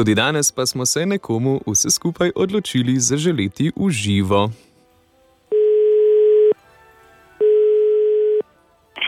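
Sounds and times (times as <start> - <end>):
speech: 0.0 - 4.7
telephone ringback tone on the line: 5.5 - 6.6, 7.4 - 8.5.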